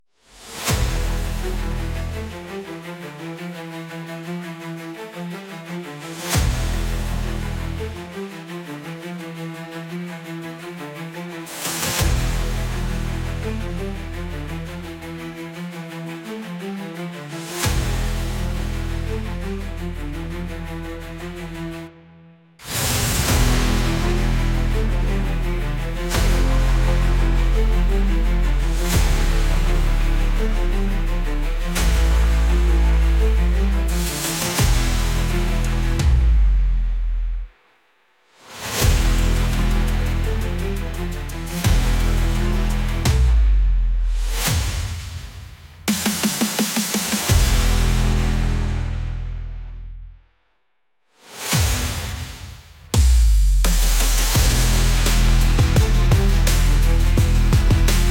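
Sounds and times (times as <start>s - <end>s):
epic bass music: 0.4s - 3.4s, 6.2s - 8.2s, 11.7s - 15.7s, 17.4s - 37.5s, 38.8s - 44.9s, 45.9s - 50.2s, 52.9s - 58.0s.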